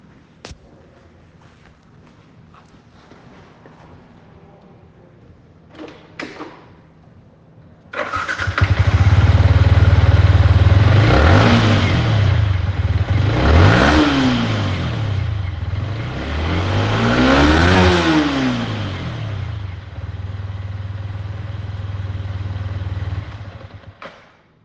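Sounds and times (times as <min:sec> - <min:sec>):
Yamaha MT 125 motorcycle engine: 0:08.0 - 0:24.2.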